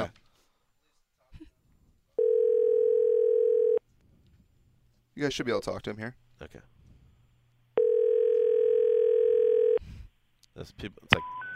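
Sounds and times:
telephone dial tone: 0:02.2 - 0:03.8, 0:07.8 - 0:09.8
speech: 0:05.2 - 0:06.8, 0:10.6 - 0:11.4.

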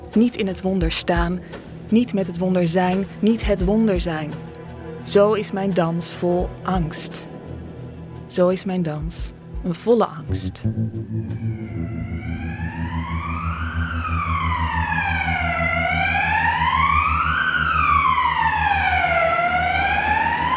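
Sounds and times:
speech: 0:00.1 - 0:07.3, 0:08.3 - 0:12.8
ambulance siren wailing: 0:10.6 - 0:20.5.

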